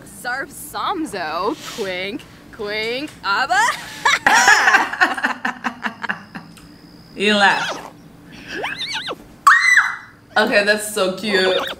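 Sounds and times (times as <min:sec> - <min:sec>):
speech: 0:00.2 - 0:04.4, 0:07.2 - 0:07.8, 0:10.4 - 0:11.7
laughter: 0:03.6 - 0:06.4
loud bright sustained squeal-like tone: 0:07.4 - 0:09.2, 0:11.3 - 0:11.7
video game horse whinnying: 0:07.5 - 0:10.0.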